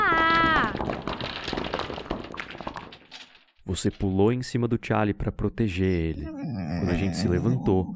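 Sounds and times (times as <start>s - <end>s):
cracking debris tumbling and clattering: 0.0s - 4.9s
tower's stone roof caving in with a crash: 0.0s - 5.2s
speech: 3.7s - 7.9s.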